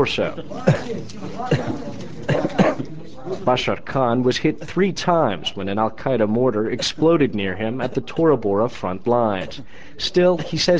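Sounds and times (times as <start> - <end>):
speech: 0.0 - 10.7
wounded soldier coughing in a hospital intensive care unit: 0.4 - 2.9.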